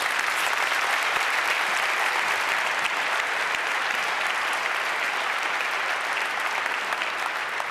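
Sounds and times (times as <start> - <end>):
audience applause, many hands clapping: 0.0 - 7.7.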